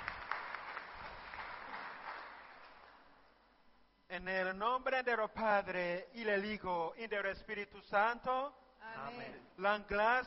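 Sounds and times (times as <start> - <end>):
audience applause: 0.0 - 3.1
speech: 4.1 - 10.2.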